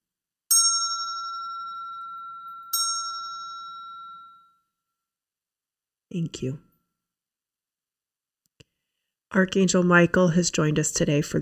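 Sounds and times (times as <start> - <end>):
bell struck with a clear bright tone: 0.5 - 4.6
speech: 6.1 - 6.7, 9.4 - 11.4.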